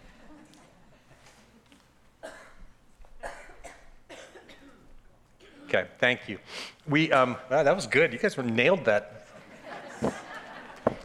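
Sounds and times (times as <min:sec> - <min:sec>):
speech: 0:05.7 - 0:09.2
forceful nose blowing: 0:06.4 - 0:06.8
laughter: 0:09.2 - 0:11.0.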